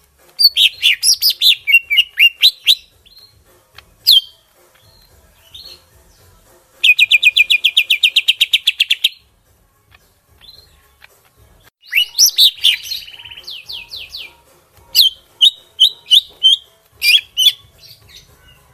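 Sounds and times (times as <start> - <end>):
greater green leafbird whistles in Kalimantan: 0.4 - 3.4, 4.0 - 5.9, 6.8 - 9.2, 11.8 - 18.3.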